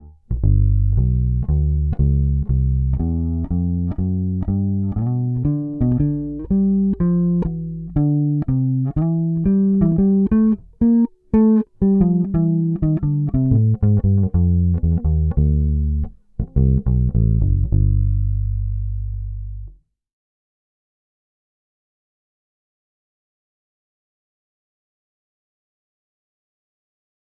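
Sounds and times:
dry Fender Precision bass guitar: 0:00.0 - 0:19.8.

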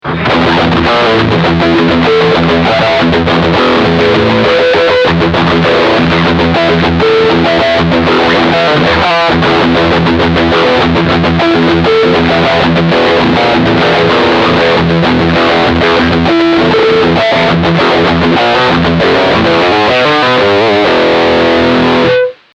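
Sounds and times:
electric guitar riff through humbucker pickup: 0:00.0 - 0:22.5.

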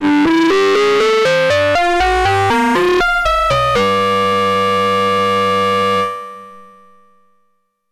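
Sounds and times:
ring type distortion synthesizer lead on a Behringer Neutron: 0:00.4 - 0:06.0.

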